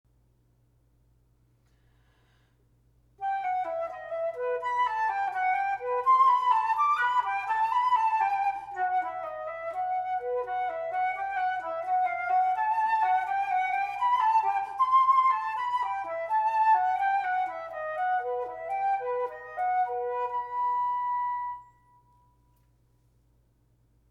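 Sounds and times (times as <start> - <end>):
lyrical flute melody: 3.2 - 22.3.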